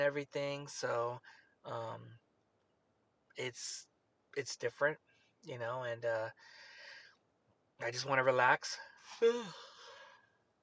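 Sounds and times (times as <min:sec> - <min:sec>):
speech: 0:00.0 - 0:02.2, 0:03.4 - 0:06.7, 0:07.8 - 0:09.7
person yawning: 0:09.1 - 0:10.0.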